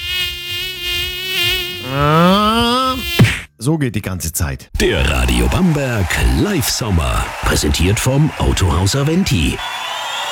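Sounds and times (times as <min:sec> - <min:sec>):
loud mosquito whine: 0:00.0 - 0:03.2
speech: 0:01.9 - 0:02.2, 0:03.6 - 0:09.8.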